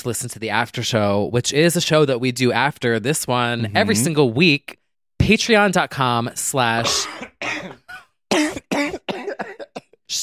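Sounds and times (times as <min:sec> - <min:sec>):
speech: 0:00.0 - 0:07.9
man coughing: 0:06.8 - 0:10.0.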